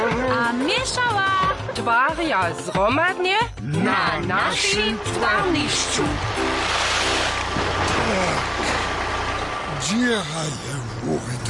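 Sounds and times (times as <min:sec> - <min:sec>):
truck engine rumbling: 0:00.0 - 0:11.4
speech: 0:00.8 - 0:06.9, 0:08.1 - 0:08.7, 0:09.9 - 0:11.4.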